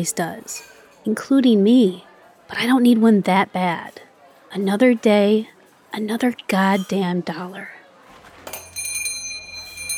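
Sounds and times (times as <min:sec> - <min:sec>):
speech: 0:00.0 - 0:07.8
front door bell ringing with a bright metallic tone: 0:08.5 - 0:09.9.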